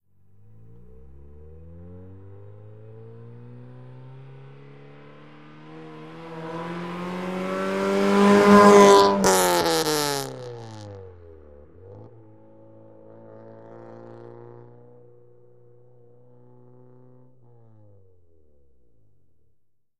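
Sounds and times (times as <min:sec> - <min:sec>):
Acura Integra approaching and accelerating fast, exterior: 0:00.0 - 0:19.6.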